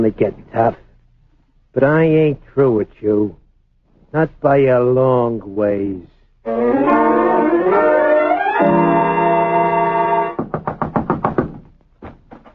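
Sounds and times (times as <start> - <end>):
speech: 0.0 - 0.8, 1.8 - 3.4, 4.1 - 7.3
swelling musical sting: 6.5 - 10.4
heavy pounding knocks on a door: 10.4 - 12.3.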